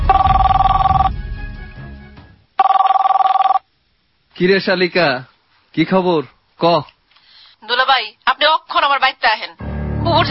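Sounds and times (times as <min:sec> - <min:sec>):
telephone ringing with an incoming call: 0:00.1 - 0:01.1, 0:02.6 - 0:03.7
speech: 0:04.4 - 0:06.9, 0:08.9 - 0:10.2.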